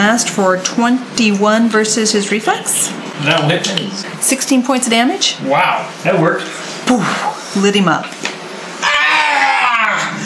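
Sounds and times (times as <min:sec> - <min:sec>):
speech: 0:00.0 - 0:08.2
voice imitating the scream of a shrill imp: 0:08.8 - 0:10.2.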